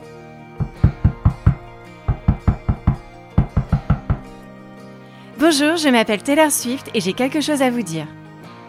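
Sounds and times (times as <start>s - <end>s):
knuckles knocking on a door: 0.6s - 4.5s
speech: 5.4s - 8.2s.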